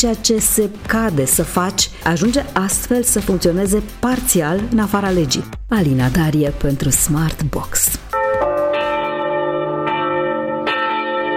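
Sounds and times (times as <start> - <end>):
speech: 0.0 - 8.0
church bells tolling at a funeral: 8.1 - 11.3.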